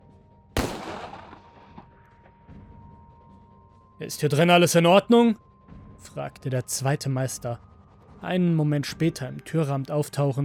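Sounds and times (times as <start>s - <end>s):
pistol shot: 0.6s - 1.9s
speech: 4.0s - 10.4s.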